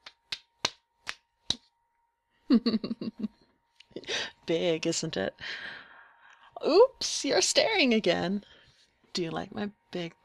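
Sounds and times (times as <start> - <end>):
slaps of skin on skin: 0.0 - 1.7
laughter: 2.5 - 3.3
speech: 2.5 - 5.8, 6.6 - 8.6, 9.2 - 10.2.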